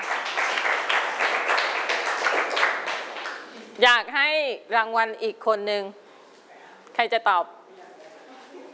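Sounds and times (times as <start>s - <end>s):
classroom children clapping for a classmate: 0.0s - 3.6s
speech: 3.8s - 6.0s, 7.0s - 7.6s.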